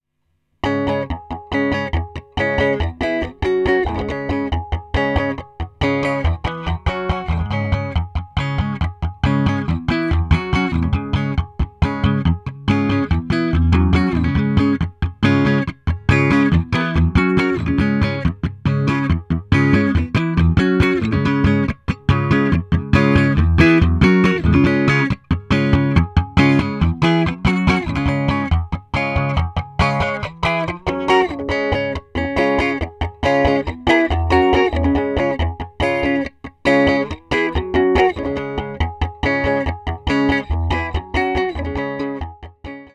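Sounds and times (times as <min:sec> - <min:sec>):
guitar phase variation through Little Labs IPB: 0:00.6 - 0:42.9.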